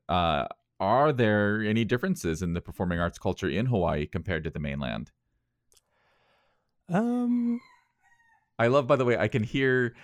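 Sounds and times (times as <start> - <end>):
speech: 0.1 - 5.2, 6.9 - 7.7, 8.6 - 10.0
rooster crowing in Hawaii: 7.3 - 8.6.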